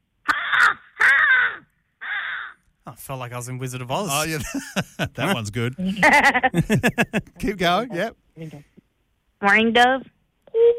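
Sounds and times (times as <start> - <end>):
American crow cawing: 0.3 - 2.7
speech: 3.0 - 8.7, 9.4 - 10.1
laughter: 4.1 - 7.9.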